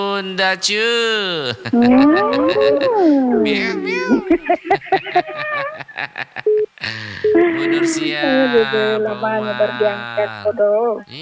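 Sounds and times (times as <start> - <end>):
speech: 0.0 - 5.4, 6.1 - 11.1
laughter: 0.9 - 11.1
cat meowing: 1.8 - 4.6, 7.2 - 11.1.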